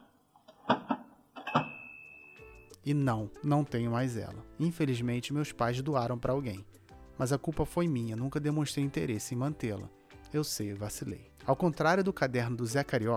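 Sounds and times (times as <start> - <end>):
typewriter carriage return ding: 0.8 - 2.7
speech: 2.8 - 13.1.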